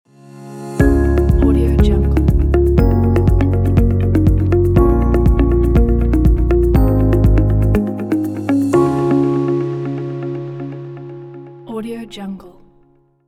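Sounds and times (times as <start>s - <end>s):
corporate logo jingle: 0.8s - 10.6s.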